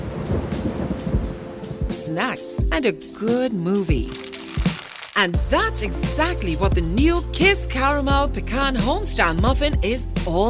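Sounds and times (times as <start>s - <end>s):
steady rainfall at night: 0.0s - 2.0s, 4.1s - 5.2s
speech: 2.1s - 4.2s, 5.2s - 10.4s.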